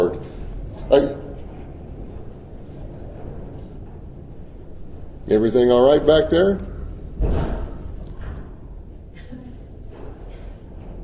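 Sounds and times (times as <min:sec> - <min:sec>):
speech: 0:00.9 - 0:01.2, 0:05.3 - 0:07.5
heavy door slammed shut by wind: 0:07.2 - 0:08.5.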